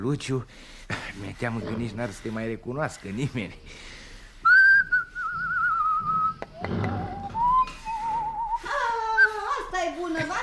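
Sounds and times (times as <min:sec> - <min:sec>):
speech: 0:00.0 - 0:04.0
person whistling a warbling tune: 0:04.4 - 0:09.4.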